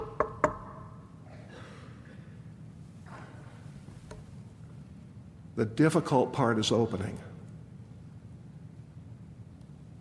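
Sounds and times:
hollow knocks on a door: 0.0 - 0.8
speech: 5.6 - 7.3.

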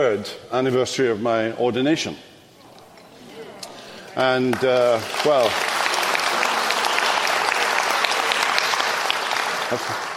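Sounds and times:
speech: 0.0 - 2.3, 4.2 - 5.7, 9.7 - 10.1
faint murmur of voices: 2.4 - 10.1
audience clapping in a Presbyterian church: 4.0 - 10.1.

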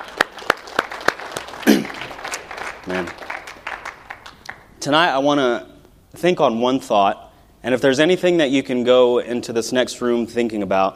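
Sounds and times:
audience applause in a church service: 0.0 - 4.6
speech: 2.8 - 3.2, 4.8 - 10.9.

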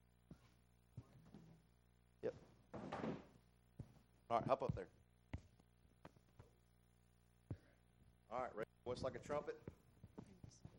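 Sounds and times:
speech: 2.2 - 2.9, 4.3 - 5.0, 8.4 - 9.7
chair being moved with hollow knocks and bumps: 2.7 - 3.9.

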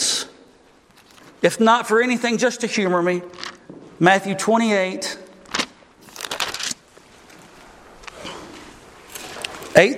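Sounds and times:
speech: 1.4 - 5.2, 9.8 - 9.9
audience turning thin Bible pages: 3.3 - 3.6, 5.4 - 8.2, 9.0 - 9.8.

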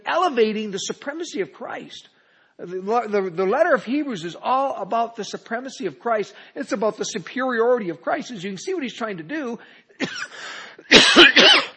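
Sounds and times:
speech: 0.1 - 11.7
person coughing: 10.0 - 11.7.

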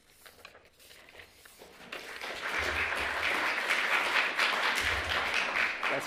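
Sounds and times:
audience applauding: 1.9 - 6.0.

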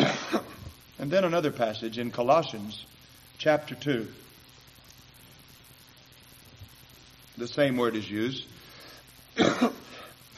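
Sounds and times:
person coughing: 0.0 - 0.7, 9.4 - 10.3
speech: 1.0 - 4.2, 7.4 - 8.6.

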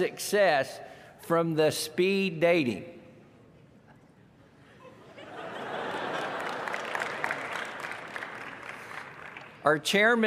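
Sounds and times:
speech: 0.0 - 3.0, 9.6 - 10.2
audience laughing: 3.9 - 8.1
audience applause: 5.5 - 9.6.

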